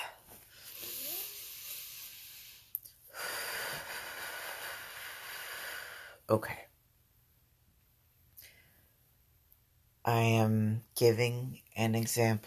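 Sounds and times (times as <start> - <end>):
person breathing deeply: 0.0 - 6.3
speech: 6.3 - 6.7, 10.1 - 12.4.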